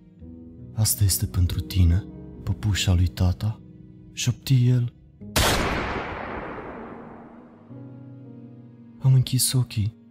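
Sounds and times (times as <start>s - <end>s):
speech: 0.8s - 3.6s, 4.2s - 5.6s, 9.2s - 10.0s
gunfire: 5.4s - 7.5s
explosions: 5.4s - 7.6s.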